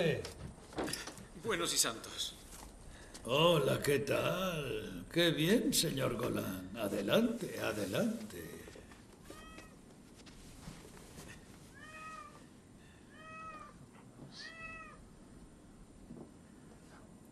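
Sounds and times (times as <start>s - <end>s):
speech: 0.0s - 2.4s, 3.2s - 8.6s
low hum: 0.0s - 17.3s
cat meowing: 9.3s - 9.8s, 11.7s - 12.5s, 13.1s - 15.0s.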